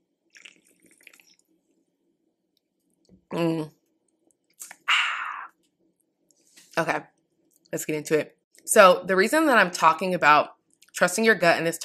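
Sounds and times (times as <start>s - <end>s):
short slurp from a drink: 0.3s - 1.4s
speech: 3.3s - 3.8s, 6.8s - 7.0s, 7.7s - 11.8s
faint wet lip clicks while sipping a drink: 4.1s - 4.9s.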